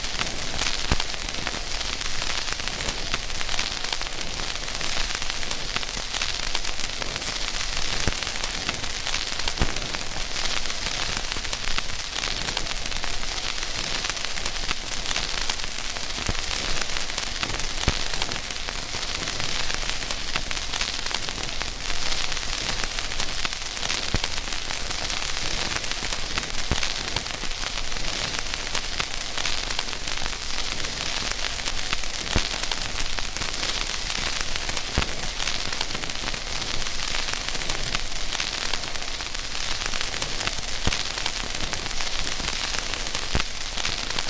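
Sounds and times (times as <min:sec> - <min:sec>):
steady hiss of an old vinyl record: 0:00.0 - 0:44.2.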